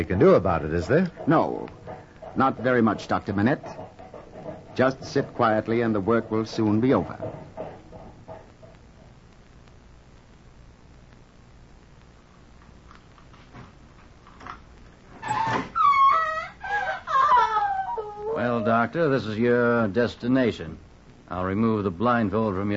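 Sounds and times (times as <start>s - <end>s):
speech: 0.0s - 1.8s, 2.4s - 3.8s, 4.8s - 7.5s, 18.9s - 22.7s
soft knocks: 1.1s - 8.8s
woman screaming: 15.8s - 18.8s.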